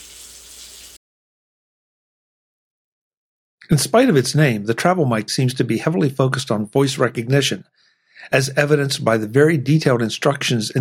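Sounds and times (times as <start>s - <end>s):
water running from a tap: 0.0s - 1.0s
speech: 3.6s - 10.7s.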